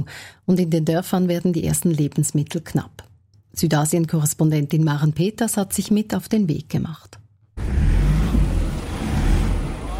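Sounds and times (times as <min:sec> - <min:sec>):
speech: 0:00.0 - 0:07.8
car engine revving on a narrow muddy road: 0:07.6 - 0:09.9.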